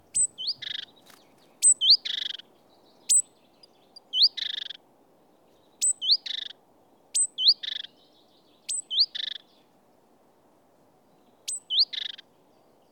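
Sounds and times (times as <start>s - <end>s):
great tit (Parus major) calling: 0.1s - 2.4s, 3.0s - 4.8s, 5.8s - 6.6s, 7.2s - 7.9s, 8.7s - 9.5s, 11.5s - 12.2s.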